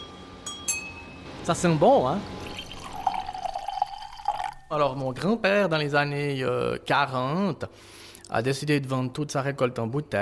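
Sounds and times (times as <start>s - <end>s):
speech: 1.5s - 2.4s, 4.7s - 10.2s
wine running from a vat tap into a glass: 2.2s - 5.4s.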